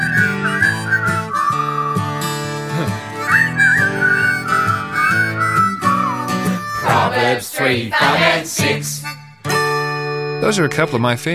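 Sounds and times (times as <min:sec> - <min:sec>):
whistled melody: 0:00.0 - 0:07.4
upbeat backing music: 0:00.0 - 0:11.3
speech: 0:07.3 - 0:09.0, 0:10.4 - 0:11.3.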